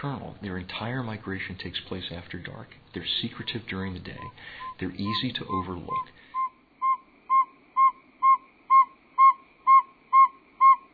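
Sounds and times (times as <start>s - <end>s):
speech: 0.0s - 6.3s
male saw-whet owl advertisement call: 4.2s - 10.9s.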